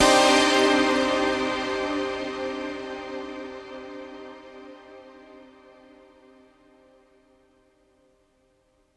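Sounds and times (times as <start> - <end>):
synth blast: 0.0 - 4.0.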